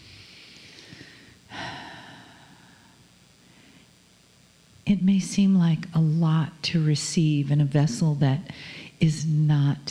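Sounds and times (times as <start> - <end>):
deep breath during a guided breathing exercise: 0.0 - 4.0, 8.5 - 9.0
speech: 4.9 - 9.8.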